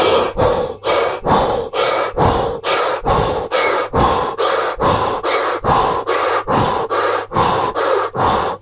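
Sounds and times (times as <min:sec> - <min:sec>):
rapid breathing in and out through an open mouth: 0:00.0 - 0:08.6.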